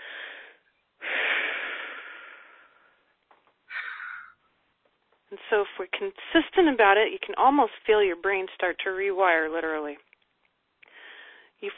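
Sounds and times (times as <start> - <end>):
deep breathing: 0.0 - 4.4, 10.8 - 11.6
speech: 5.3 - 10.1, 11.6 - 11.7.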